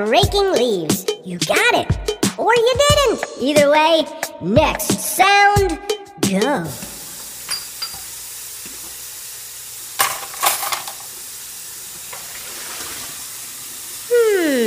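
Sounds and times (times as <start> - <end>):
speech: 0.0 - 6.9
sink faucet water running: 6.3 - 14.6
dishes clinking and rattling while washed in a sink: 7.4 - 8.1, 10.0 - 11.1.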